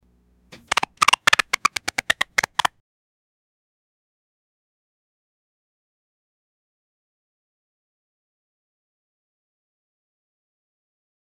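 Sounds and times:
old cartoon fight sounds: 0.6s - 2.7s.

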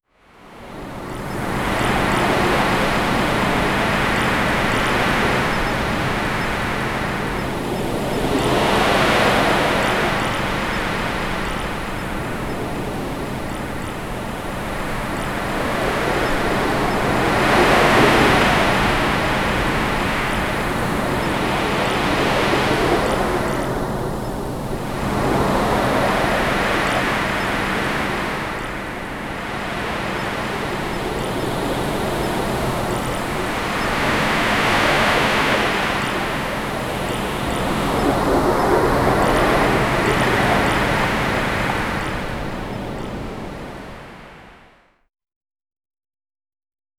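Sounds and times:
ocean waves crashing: 0.8s - 44.6s.

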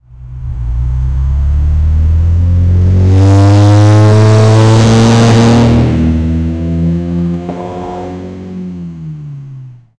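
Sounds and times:
sports car accelerating: 0.1s - 9.9s.

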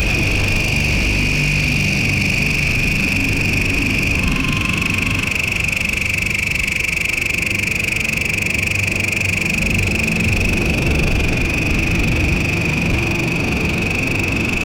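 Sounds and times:
futuristic drone: 0.0s - 14.6s.

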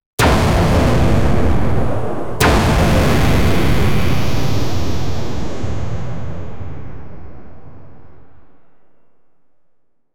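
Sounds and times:
futuristic laser beam: 0.2s - 5.4s.

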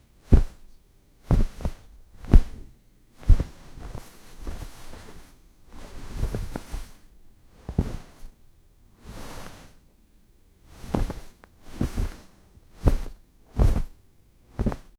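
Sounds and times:
slight cloth whoosh from brushing: 0.3s - 0.6s, 1.3s - 7.0s, 7.6s - 8.4s, 9.0s - 9.8s, 10.7s - 14.0s, 14.6s - 14.9s.

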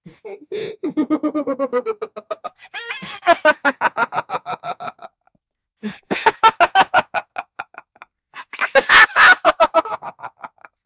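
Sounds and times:
hyena laughing nastily: 1.0s - 5.1s, 6.1s - 10.7s.

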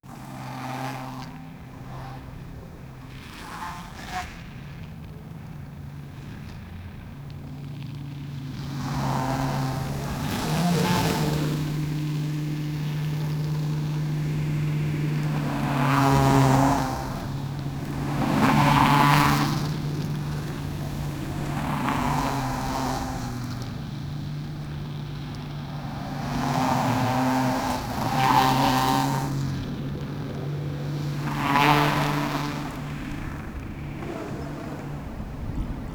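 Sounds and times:
BMW M3 car engine: 0.0s - 35.9s.

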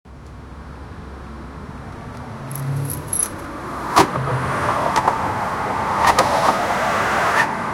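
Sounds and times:
nearby car braking: 1.6s - 7.6s.

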